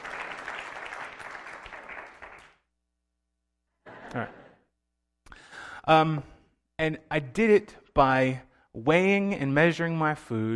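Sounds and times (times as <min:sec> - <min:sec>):
audience clapping: 0:00.0 - 0:02.7
speech: 0:04.1 - 0:04.4, 0:05.9 - 0:10.5.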